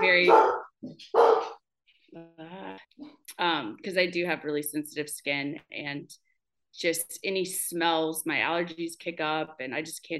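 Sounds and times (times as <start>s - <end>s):
speech: 0.0s - 1.3s, 3.4s - 6.2s, 6.8s - 10.1s
dog barking: 0.0s - 1.6s
dog yelping: 0.2s - 1.6s.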